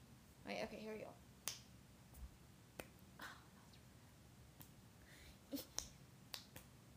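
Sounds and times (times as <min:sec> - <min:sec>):
speech: 0:00.5 - 0:01.3
right-hand finger snaps: 0:01.4 - 0:01.7, 0:04.5 - 0:04.7, 0:05.5 - 0:06.7.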